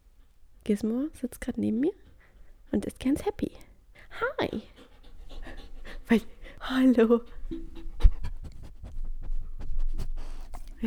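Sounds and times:
speech: 0.7 - 2.1, 2.7 - 4.9, 6.1 - 7.8
dog panting: 3.9 - 10.8
soft scratching or shuffling: 8.4 - 10.8.

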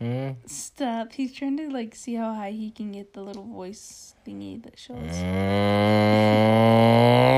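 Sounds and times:
person imitating a cow mooing: 0.0 - 0.5, 5.0 - 7.3
speech: 0.5 - 7.3.

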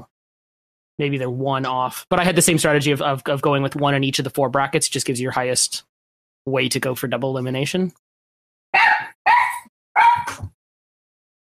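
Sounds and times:
speech: 1.0 - 8.0
dog barking: 8.8 - 10.4.

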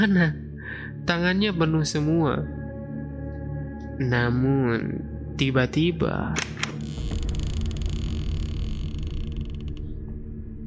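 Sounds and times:
speech: 0.0 - 0.4, 1.0 - 2.6, 4.0 - 6.6
door creaking slowly open with stuttering wooden ticks: 6.4 - 10.2.

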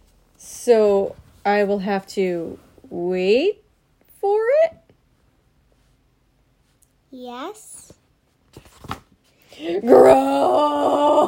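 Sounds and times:
speech: 0.6 - 3.6, 4.2 - 4.8, 7.1 - 8.0, 9.6 - 11.2
person groaning: 9.6 - 11.2.

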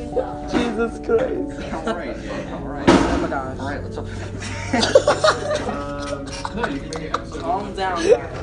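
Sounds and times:
excited people talking and chuckling: 0.0 - 8.4
speech: 0.2 - 8.4
chair slammed down hard: 2.8 - 3.4.

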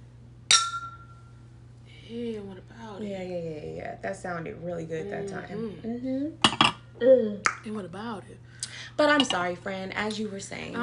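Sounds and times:
glasses clinking together in a toast: 0.5 - 1.3
speech: 2.1 - 10.8.

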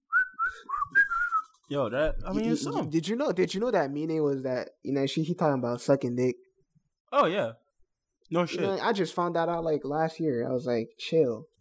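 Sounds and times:
person whistling a song's melody: 0.1 - 1.6
speech: 1.7 - 6.4, 7.1 - 7.6, 8.3 - 11.6.

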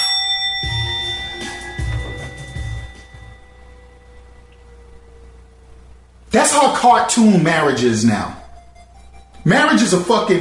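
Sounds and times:
bright bell ringing: 0.0 - 4.3
speech: 6.3 - 8.4, 9.4 - 10.4.

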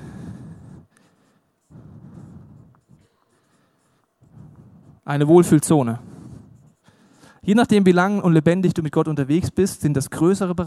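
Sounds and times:
pen scratching while drawing a circle: 2.8 - 7.6
speech: 5.1 - 6.1, 7.4 - 10.6.

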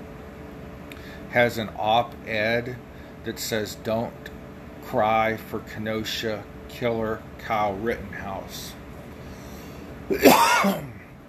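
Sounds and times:
speech: 1.3 - 8.8, 10.1 - 10.9
raspy throaty cough: 10.1 - 11.0.

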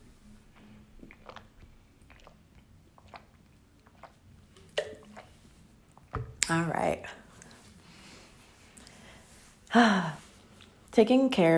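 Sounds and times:
person sipping a drink: 0.2 - 6.1
swallowing: 0.5 - 5.4
speech: 6.5 - 7.2, 9.7 - 10.2, 11.0 - 11.5.

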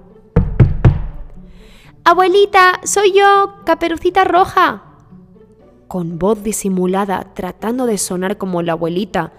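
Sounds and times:
firm knocking on a wooden door: 0.4 - 1.3
speech: 1.6 - 4.9, 5.9 - 9.3.

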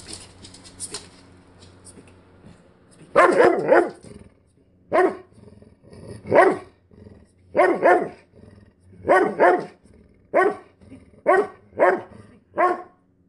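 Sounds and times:
dog barking: 3.1 - 4.0, 4.9 - 5.3, 6.3 - 6.7, 7.5 - 8.2, 9.0 - 13.0.

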